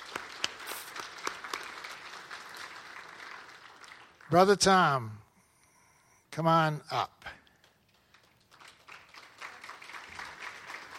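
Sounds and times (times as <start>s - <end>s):
crowd applauding: 0.0s - 4.8s, 7.6s - 10.9s
speech: 4.3s - 5.2s, 6.4s - 7.4s.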